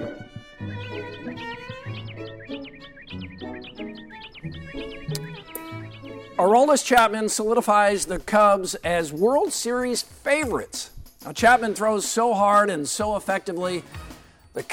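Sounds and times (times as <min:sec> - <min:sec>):
hawk calling on a live hawk camera: 0:00.2 - 0:06.5
speech: 0:06.4 - 0:14.7.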